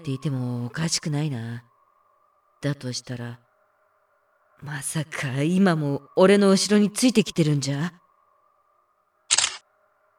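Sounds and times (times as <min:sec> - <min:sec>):
speech: 0:00.0 - 0:01.7, 0:02.6 - 0:03.4, 0:04.6 - 0:08.0
faint steady hum: 0:00.0 - 0:10.1
crisp phone camera shutter click: 0:09.3 - 0:09.6.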